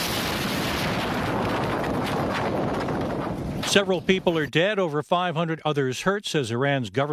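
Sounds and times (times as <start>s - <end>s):
large explosion at a port: 0.0s - 4.2s
speech: 3.7s - 7.1s.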